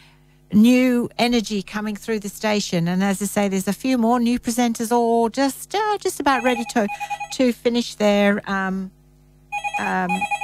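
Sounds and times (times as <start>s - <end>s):
speech: 0.5s - 9.0s, 9.8s - 10.4s
telephone ringing with a bright electronic trill: 6.2s - 7.6s, 9.5s - 10.4s.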